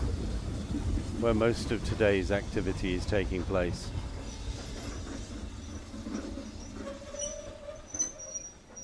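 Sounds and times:
train idling at a station: 0.0 - 8.8
speech: 1.2 - 4.0
train wheels or brakes squealing: 3.8 - 8.8.

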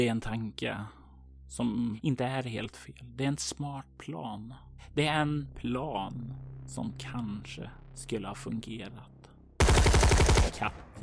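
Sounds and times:
speech: 0.0 - 9.1, 10.6 - 11.0
automatic gunfire: 9.6 - 10.8.

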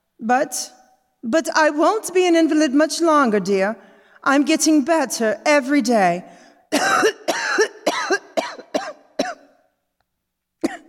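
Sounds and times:
speech: 0.2 - 7.7
convalescing woman coughing in a harsh fit: 6.7 - 9.6, 10.6 - 10.8.

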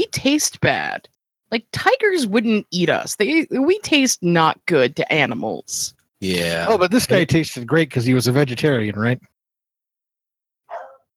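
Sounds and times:
speech: 0.1 - 9.3
dog barking: 10.7 - 11.1.

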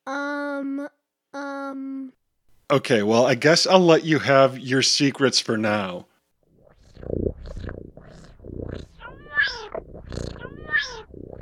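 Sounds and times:
speech: 0.1 - 1.9, 2.7 - 6.1
cat purring: 6.4 - 11.3
cat meowing: 8.9 - 11.3.

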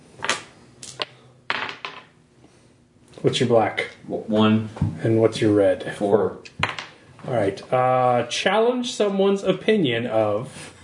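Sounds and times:
dice being rolled in a tabletop game: 0.2 - 2.1
speech: 3.2 - 6.6, 7.2 - 10.7.

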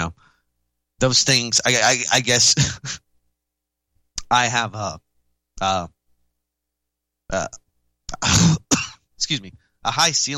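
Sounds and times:
speech: 1.0 - 3.0, 4.3 - 5.0, 5.6 - 6.0, 7.3 - 7.6, 8.2 - 8.6, 9.2 - 10.3
person coughing and clearing throat: 2.5 - 3.0, 8.1 - 9.1.

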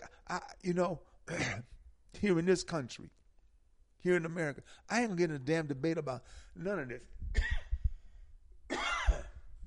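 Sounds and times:
speech: 0.3 - 3.2, 4.0 - 7.5
rough coughing fit: 1.3 - 2.3, 7.3 - 7.8, 8.7 - 9.5.

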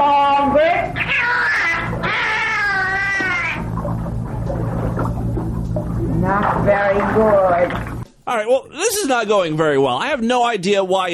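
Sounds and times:
low murky rumble: 0.1 - 8.1
dolphin vocalizations, long wavering squealing cries: 0.8 - 3.7
speech: 8.3 - 11.1.

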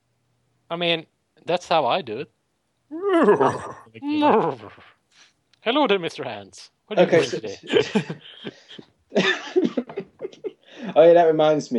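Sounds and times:
speech: 0.7 - 9.8, 10.8 - 11.7
person imitating a horse whinny: 2.9 - 5.0
laughter: 3.2 - 4.9, 7.0 - 11.0.

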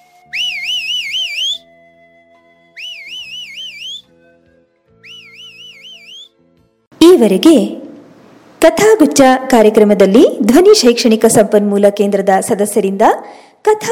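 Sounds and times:
person whistling softly while walking home: 0.0 - 1.8, 2.7 - 4.2, 5.0 - 6.4
speech: 7.1 - 7.8, 8.6 - 13.9.

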